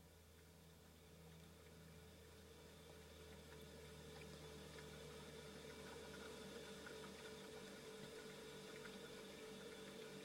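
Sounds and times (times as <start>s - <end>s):
refrigerator humming: 0.0s - 10.2s.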